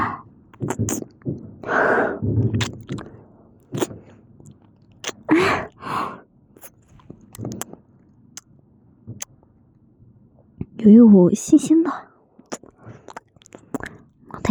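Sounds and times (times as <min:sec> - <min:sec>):
wet mouth sounds of someone licking and tasting something: 0:00.5 - 0:01.2, 0:02.5 - 0:03.1, 0:03.7 - 0:05.9, 0:06.6 - 0:07.8, 0:12.4 - 0:14.5
speech: 0:00.6 - 0:01.1, 0:10.9 - 0:12.1
breathy gasps: 0:05.3 - 0:06.2.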